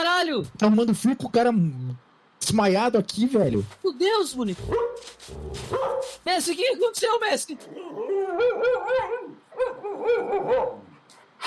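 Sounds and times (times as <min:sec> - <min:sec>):
speech: 0:00.3 - 0:10.8
dog barking in high, yelping barks with a whiny edge: 0:04.7 - 0:06.2, 0:08.4 - 0:11.0.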